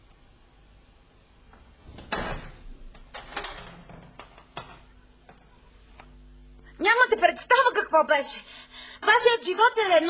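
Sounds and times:
door opening: 1.8s - 5.0s
speech: 6.8s - 10.0s.

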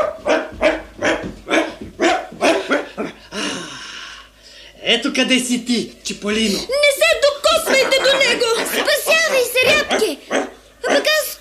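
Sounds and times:
dog barking: 0.0s - 3.2s, 7.5s - 11.3s
speech: 4.9s - 7.0s, 7.8s - 10.2s.

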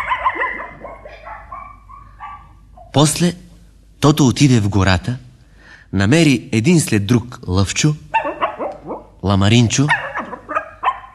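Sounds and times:
small dog yapping with high-pitched barks and yips: 0.0s - 2.9s, 8.1s - 9.1s, 9.9s - 11.1s
speech: 2.9s - 3.4s, 4.0s - 5.2s, 5.9s - 8.0s, 9.2s - 10.0s.

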